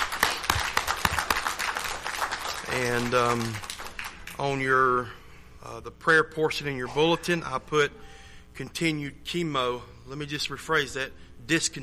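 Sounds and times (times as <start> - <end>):
church congregation applauding: 0.0 - 4.4
speech: 2.7 - 3.7, 4.4 - 11.8.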